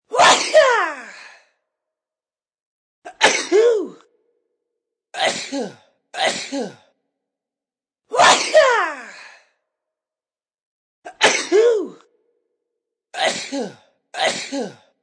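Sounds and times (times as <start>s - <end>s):
person sneezing as a ringtone: 0.1s - 1.3s, 3.1s - 4.0s, 5.2s - 6.8s, 8.2s - 9.3s, 11.1s - 12.0s, 13.2s - 14.9s.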